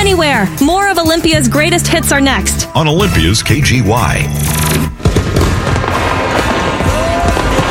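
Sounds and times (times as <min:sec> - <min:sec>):
speech: 0:00.1 - 0:04.9
fireworks in a dense barrage of loud booms and crackling bursts: 0:04.9 - 0:07.6.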